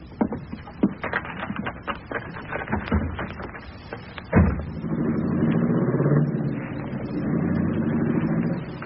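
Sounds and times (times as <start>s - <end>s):
clattering knocks: 0.0s - 4.8s
car engine starting and rumbling as the car pulls away: 4.0s - 8.8s.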